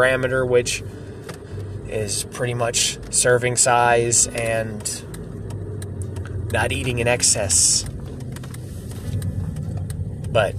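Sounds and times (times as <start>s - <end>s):
speech: 0.0s - 1.1s, 1.9s - 5.2s, 6.5s - 7.9s, 10.3s - 10.5s
road drone inside a moving car: 0.0s - 10.5s
steady low engine rumble inside a moving car: 0.0s - 10.5s.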